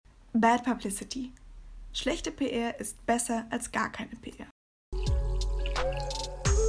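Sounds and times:
speech: 0.4 - 1.4, 2.0 - 5.0
prosecco being poured: 5.2 - 6.5
cork popping: 5.6 - 6.4.

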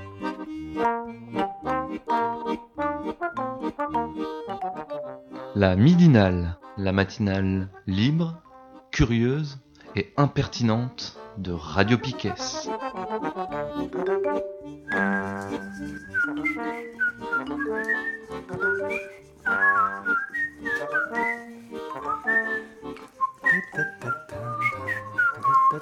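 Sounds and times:
rhythmic musical backing: 0.0 - 5.6, 12.3 - 25.7
speech: 0.7 - 1.0, 5.6 - 8.4, 9.0 - 14.5
person whistling a lively tune: 14.9 - 25.7.

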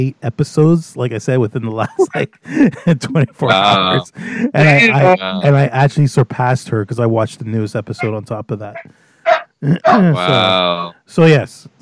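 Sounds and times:
speech: 0.0 - 9.0, 9.6 - 11.8
laughter: 1.7 - 5.7, 9.6 - 10.9
dog high-pitched whining: 8.8 - 10.9
dog barking: 9.3 - 10.4.

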